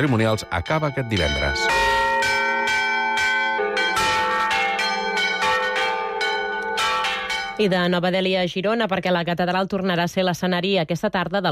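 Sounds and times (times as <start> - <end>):
speech: 0.0 - 1.9, 7.6 - 11.4
church bells rung by hand pealing: 0.0 - 8.0.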